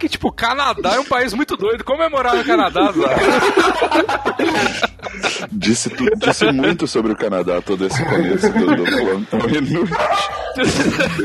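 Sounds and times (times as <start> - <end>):
speech: 0.0 - 11.2
people talking and chuckling: 0.8 - 1.6, 2.2 - 11.2
dog barking: 9.9 - 10.7.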